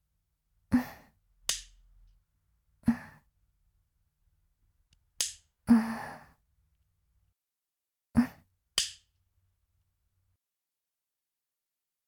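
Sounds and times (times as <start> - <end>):
nail clippers clipping fingernails of the right hand: 5.2 - 5.4
person sighing: 5.7 - 6.4.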